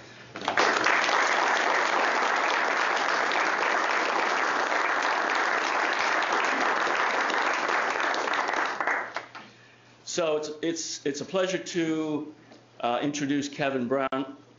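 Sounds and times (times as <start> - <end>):
audience applause: 0.4 - 9.4
speech: 10.1 - 14.4.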